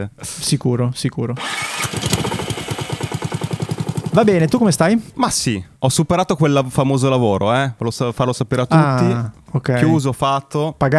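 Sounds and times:
speech: 0.0s - 2.4s, 4.2s - 10.9s
small two-stroke hedge trimmer engine running outside: 1.4s - 5.4s.

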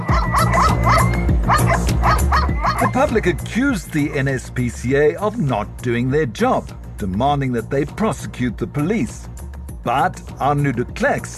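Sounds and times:
many dogs barking and yipping at a shelter: 0.0s - 3.0s
speech: 3.0s - 11.3s.

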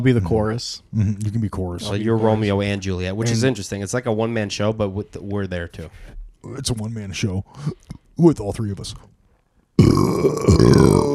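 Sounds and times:
speech: 0.0s - 9.2s, 9.8s - 11.1s
long low rumbling burp: 9.8s - 11.1s.

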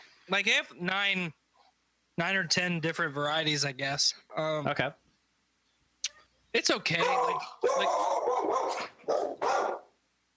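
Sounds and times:
speech: 0.3s - 1.4s, 2.2s - 5.0s, 6.5s - 9.8s
dog barking and growling: 6.9s - 10.0s.

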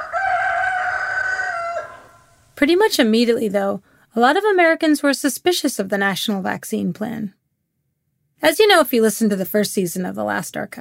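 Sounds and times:
rooster crowing: 0.0s - 2.5s
speech: 2.6s - 7.4s, 8.4s - 10.7s.

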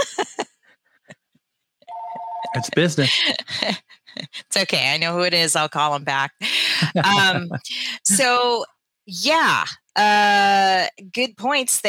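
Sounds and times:
laughter: 0.0s - 0.4s, 2.5s - 4.3s, 6.6s - 8.3s
telephone ringing with an electronic warbling tone: 1.9s - 2.8s
speech: 2.5s - 3.8s, 4.5s - 11.8s.

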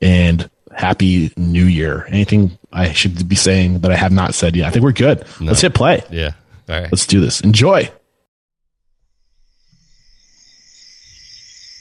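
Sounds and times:
speech: 0.9s - 8.0s
crickets chirping: 9.0s - 11.7s.

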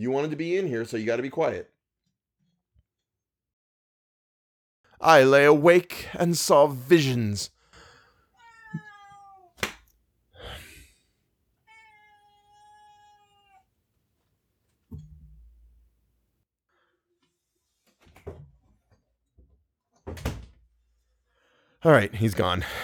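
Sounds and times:
speech: 0.0s - 1.8s, 5.0s - 7.6s, 21.8s - 22.8s
pet cat meowing in long drawn-out wails: 8.4s - 9.6s, 11.7s - 13.6s.

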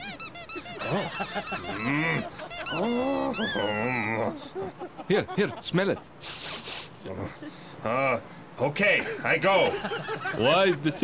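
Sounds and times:
squeak toy being squeezed: 0.0s - 4.1s
laughter: 0.6s - 6.3s, 9.0s - 11.0s
speech: 0.9s - 6.4s, 7.0s - 11.0s.

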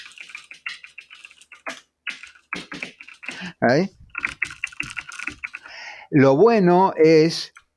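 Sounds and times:
typing on a computer keyboard: 0.0s - 3.5s, 4.1s - 5.8s
speech: 3.4s - 4.0s, 6.1s - 7.6s.

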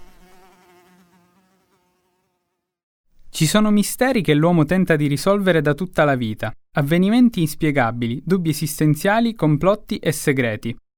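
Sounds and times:
housefly buzzing: 0.0s - 2.8s
speech: 3.4s - 10.8s.

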